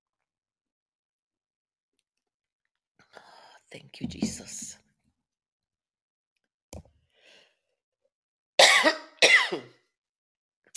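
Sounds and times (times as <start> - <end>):
speech: 3.7 - 4.8
faint breath: 7.0 - 7.7
person coughing: 8.6 - 9.8.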